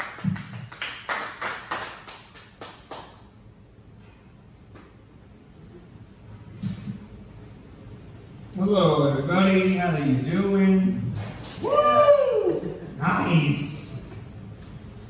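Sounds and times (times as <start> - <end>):
audience clapping hands: 0.0 - 3.3
faint low murmur: 3.6 - 15.0
speech: 8.7 - 10.8.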